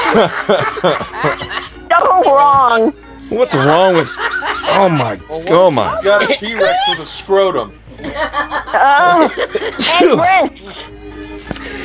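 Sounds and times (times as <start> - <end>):
excited laughing vocal sounds: 0.0 - 2.5, 3.3 - 11.0
speech: 0.1 - 11.0
person sneezing: 9.8 - 10.3.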